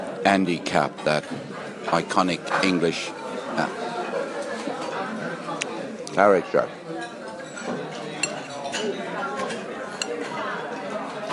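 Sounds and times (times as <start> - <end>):
murmur of indistinct voices chatting: 0.0 - 11.3
speech: 0.2 - 3.8, 6.2 - 6.8
breakfast dishes and cutlery clinking: 1.0 - 3.0, 6.9 - 11.3.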